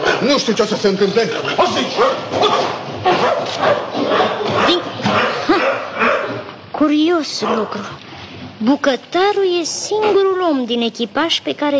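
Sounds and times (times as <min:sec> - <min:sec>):
speech: 0:00.2 - 0:05.2, 0:06.8 - 0:08.0, 0:08.6 - 0:11.7
dog barking agitatedly and lunging: 0:01.7 - 0:06.5, 0:07.4 - 0:07.8.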